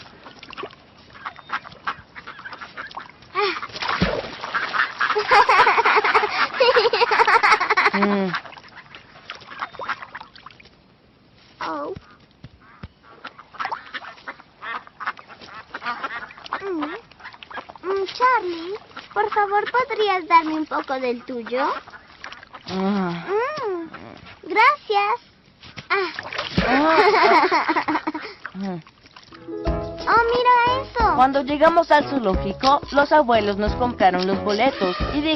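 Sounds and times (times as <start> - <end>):
flock of ducks quacking at a park pond while being fed: 1.0 - 10.4, 11.6 - 24.2, 26.6 - 28.5, 29.4 - 35.3
laughter: 5.1 - 8.3, 26.6 - 28.3
speech: 20.2 - 21.9, 22.7 - 23.3, 31.2 - 35.3.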